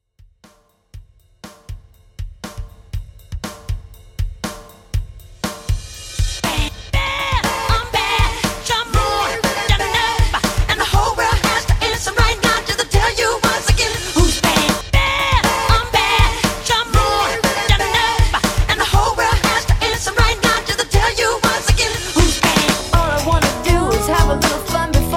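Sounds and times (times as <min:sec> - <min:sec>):
pop rock music at 120 BPM: 0:06.5 - 0:25.1.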